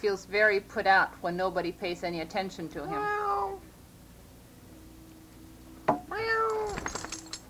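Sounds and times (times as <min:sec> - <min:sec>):
speech: 0:00.0 - 0:03.7
cat meowing to tease a dog: 0:02.8 - 0:03.6, 0:06.1 - 0:06.8
faint jingling of the dog's license tags: 0:06.5 - 0:07.4.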